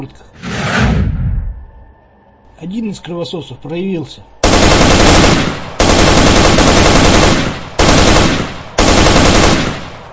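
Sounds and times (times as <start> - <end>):
speech: 0.0 - 0.4, 2.6 - 4.4
automatic gunfire from two guns in crossfire: 4.4 - 10.0.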